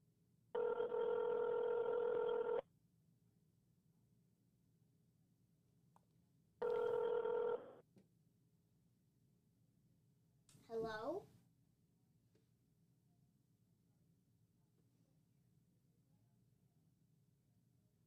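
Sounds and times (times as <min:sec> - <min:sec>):
phone ringback tone on an outgoing call: 0:00.6 - 0:02.6, 0:06.6 - 0:07.8.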